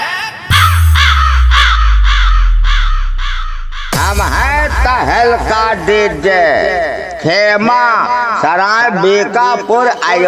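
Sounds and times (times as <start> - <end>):
crow cawing: 0.0 - 4.0
low bass drone: 0.5 - 7.4
speech: 4.8 - 10.2.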